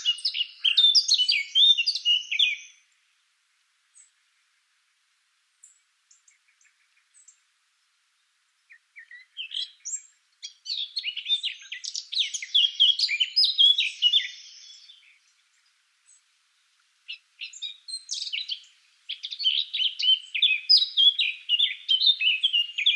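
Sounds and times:
Eurasian blackcap Sylvia atricapilla warbling song: 0:00.0 - 0:02.9, 0:08.7 - 0:16.3, 0:17.0 - 0:22.9.

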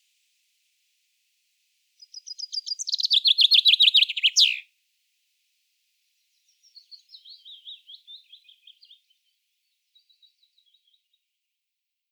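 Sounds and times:
common chaffinch Fringilla coelebs singing: 0:02.0 - 0:04.6, 0:06.4 - 0:09.1.

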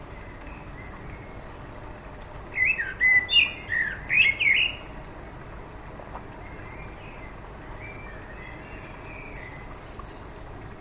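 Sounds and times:
common blackbird song: 0:00.0 - 0:01.8, 0:02.5 - 0:05.0, 0:06.4 - 0:10.5.

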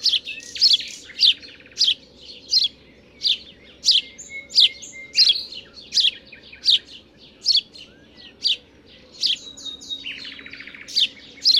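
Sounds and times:
House sparrow (Passer domesticus) chirping: 0:00.0 - 0:11.5
low droning background: 0:00.0 - 0:11.5.

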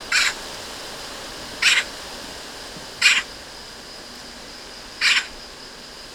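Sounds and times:
Eurasian magpie Pica pica giving short grating scratchy calls: 0:00.1 - 0:00.4, 0:01.6 - 0:02.0, 0:03.0 - 0:03.3, 0:05.0 - 0:05.4.

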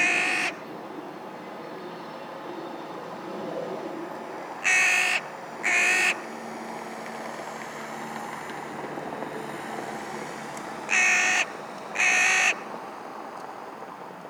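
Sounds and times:
carrion crow Corvus corone cawing: 0:00.0 - 0:00.6, 0:04.6 - 0:06.2, 0:10.9 - 0:12.6.

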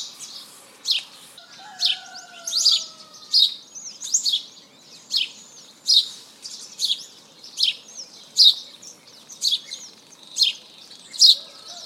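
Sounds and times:
house sparrow Passer domesticus chirps: 0:00.0 - 0:11.8.

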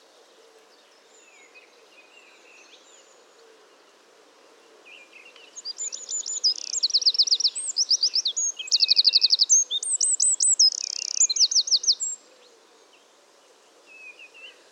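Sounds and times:
Eurasian wren singing, Troglodytes troglodytes: 0:05.5 - 0:12.2.

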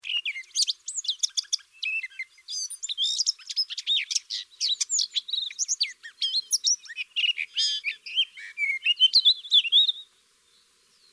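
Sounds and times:
Eurasian blackcap Sylvia atricapilla warbling song: 0:00.0 - 0:11.1.

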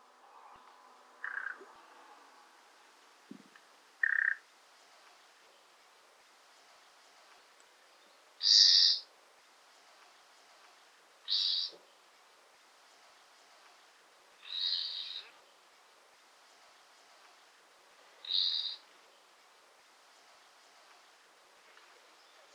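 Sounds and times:
quiet background hiss: 0:00.0 - 0:22.5
common nightingale calls: 0:01.2 - 0:01.6, 0:04.0 - 0:04.4, 0:08.4 - 0:09.1, 0:11.3 - 0:11.8, 0:14.4 - 0:15.4, 0:18.2 - 0:18.9.

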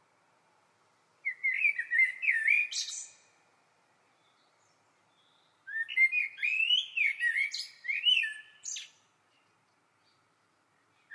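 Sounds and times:
Eurasian blackbird Turdus merula singing fluty whistles and squeaky twitters: 0:01.2 - 0:03.2, 0:05.2 - 0:09.0.

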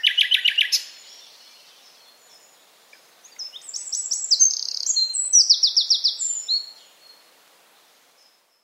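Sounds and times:
common nightingale Luscinia megarhynchos singing: 0:00.0 - 0:08.6.

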